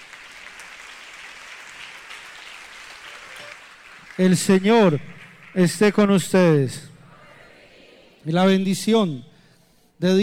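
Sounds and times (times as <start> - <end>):
audience applauding: 0.0 - 6.1
speech: 4.2 - 6.9, 8.2 - 9.3, 10.0 - 10.2.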